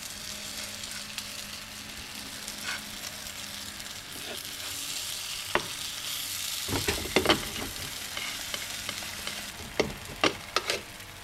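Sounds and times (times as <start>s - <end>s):
scallion pancakes sizzling in a lightly oiled pan over low heat: 0.0s - 11.2s
sharp crackles and taps: 6.7s - 10.8s.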